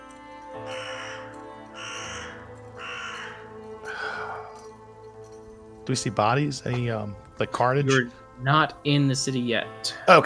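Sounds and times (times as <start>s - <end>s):
carrion crow cawing: 0.0s - 5.1s
speech: 5.9s - 10.2s.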